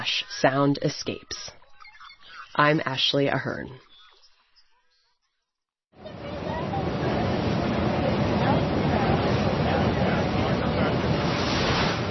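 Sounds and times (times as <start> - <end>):
speech: 0.0 - 1.6, 2.6 - 3.9
boat wake and spray crossing open water of a bay: 6.0 - 12.0
wind over open water: 6.0 - 12.0.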